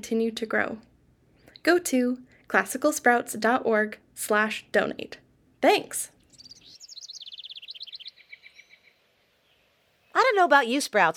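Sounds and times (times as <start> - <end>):
speech: 0.0 - 0.9, 1.6 - 6.2, 10.2 - 11.1
bird singing a rapid trill of high bright chirps at dawn: 6.2 - 10.5.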